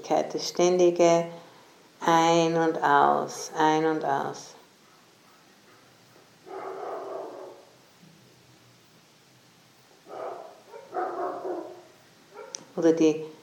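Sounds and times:
speech: 0.0s - 1.4s, 2.0s - 4.6s, 12.8s - 13.4s
faint hiss: 0.0s - 13.4s
dogs barking: 4.8s - 7.7s, 10.0s - 12.7s.

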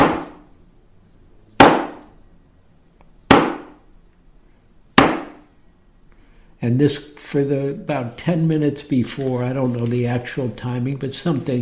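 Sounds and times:
big thick wooden block struck before Zen sitting: 0.0s - 0.4s, 5.0s - 5.4s
speech: 6.6s - 11.6s.

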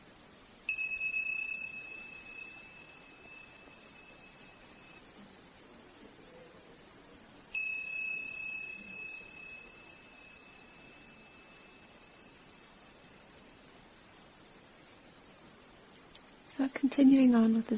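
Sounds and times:
meditation bell ringing: 0.7s - 5.7s, 7.5s - 14.2s
speech: 16.5s - 17.7s.

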